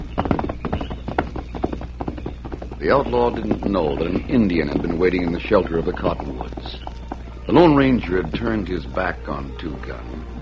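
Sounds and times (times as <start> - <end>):
white horse's hooves clip-clopping at night: 0.0 - 10.3
speech: 2.8 - 6.9, 7.5 - 10.3.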